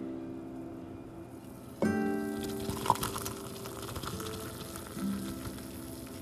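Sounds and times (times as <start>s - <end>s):
hot water from a teapot pouring into a cup of instant coffee: 1.8s - 6.2s.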